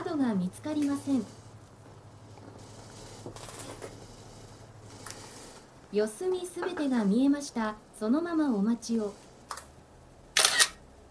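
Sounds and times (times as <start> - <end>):
speech: 0.2 - 1.4, 3.2 - 3.6, 5.9 - 9.2
camera shutter click: 10.4 - 10.8.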